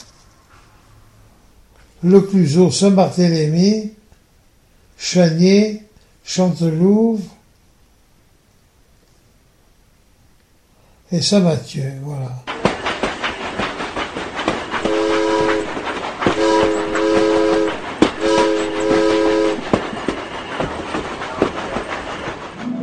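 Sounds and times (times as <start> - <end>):
speech: 2.0 - 4.0, 5.0 - 7.4, 11.1 - 12.5
steam tramway on the Piégut line in France rumbling on rails: 12.4 - 22.7
steam tramway whistle bursts: 14.8 - 19.8.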